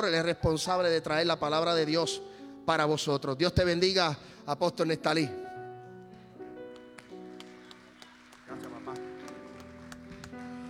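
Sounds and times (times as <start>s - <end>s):
speech: 0.0s - 5.5s
steady sustained keyboard music: 0.0s - 10.6s
sparse half-hearted audience applause: 7.0s - 10.6s.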